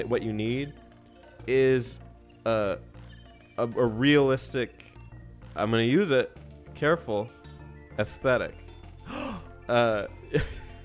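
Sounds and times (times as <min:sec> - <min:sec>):
speech: 0:00.0 - 0:00.8, 0:01.5 - 0:02.9, 0:03.6 - 0:04.9, 0:05.6 - 0:07.4, 0:08.0 - 0:10.6
person gasping: 0:09.0 - 0:09.5.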